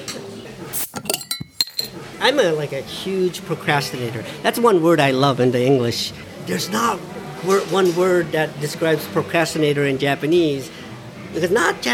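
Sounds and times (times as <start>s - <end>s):
glasses clinking in a toast: 0.8s - 2.0s
faint voices murmuring: 1.8s - 11.9s
speech: 2.2s - 11.9s.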